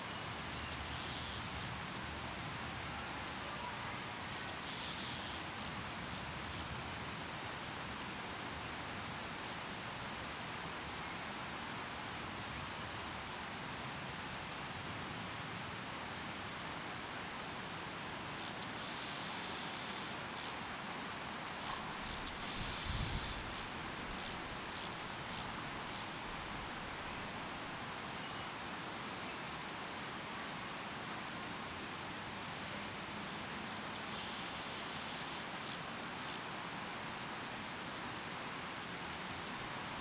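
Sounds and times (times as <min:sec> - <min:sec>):
summer meadow ambience: 0:00.0 - 0:13.8, 0:14.5 - 0:40.0.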